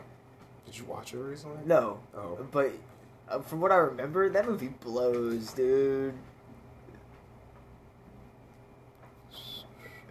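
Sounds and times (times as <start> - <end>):
speech: 0.7 - 6.3
voice imitating a cricket with a high-pitched whistled chirp: 9.3 - 10.0.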